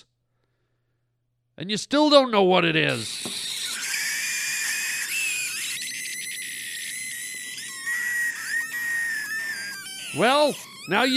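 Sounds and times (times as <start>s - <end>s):
speech: 1.6s - 3.5s, 10.1s - 11.1s
loud piercing high-pitched scream in a cola advert: 2.9s - 11.1s.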